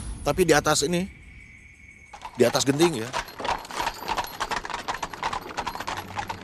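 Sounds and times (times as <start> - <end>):
speech: 0.3 - 1.2, 2.4 - 3.3
horse hooves clip-clopping pulling a cart on roof tiles: 2.1 - 6.4.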